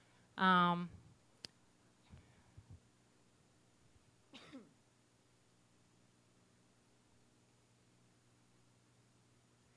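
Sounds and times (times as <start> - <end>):
speech: 0.4 - 1.0
single loud harsh cough: 4.3 - 4.7.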